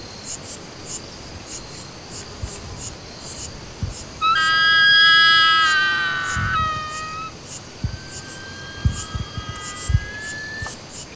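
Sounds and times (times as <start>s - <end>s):
crowned solitary eagle calling with long whistled notes: 4.2s - 10.8s.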